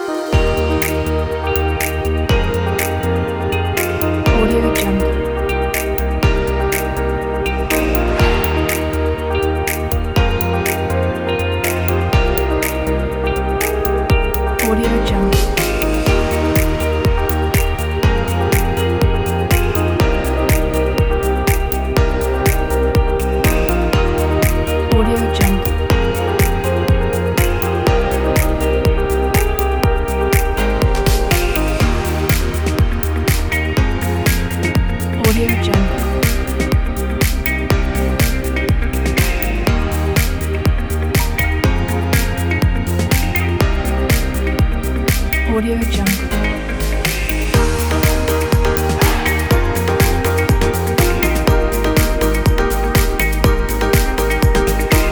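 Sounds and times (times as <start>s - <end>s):
indie corporate music: 0.2s - 55.1s.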